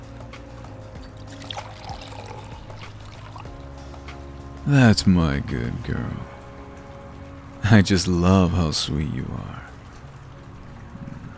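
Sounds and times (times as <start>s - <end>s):
wine pouring into a glass: 1.0s - 4.0s
speech: 4.7s - 6.3s, 7.7s - 9.7s.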